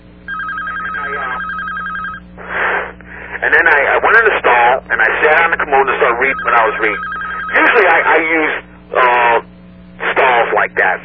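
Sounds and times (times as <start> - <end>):
telephone ringing with an electronic trill: 0.3 - 2.3, 5.9 - 8.4
speech: 3.4 - 9.5, 10.2 - 11.0.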